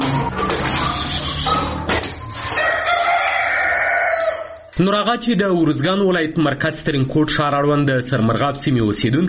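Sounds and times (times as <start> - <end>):
domestic chickens clucking in a household flock in Uruzgan province, Afghanistan: 0.0 - 4.8
rooster crowing in a household flock in Uruzgan province, Afghanistan: 2.3 - 4.7
speech: 4.8 - 9.2.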